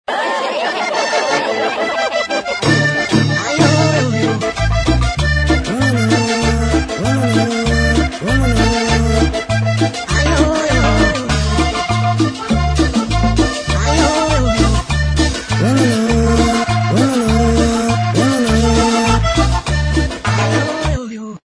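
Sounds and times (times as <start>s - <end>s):
laughter: 0.1s - 4.6s, 5.6s - 9.4s, 10.1s - 11.9s, 15.6s - 19.2s
cumbia music: 0.7s - 21.1s.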